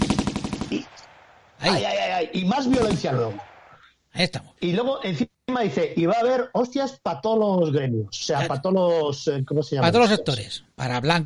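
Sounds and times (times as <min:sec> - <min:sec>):
rapid burst of gunshots: 0:00.0 - 0:01.9, 0:02.6 - 0:03.8
speech: 0:01.6 - 0:03.5, 0:04.2 - 0:11.2.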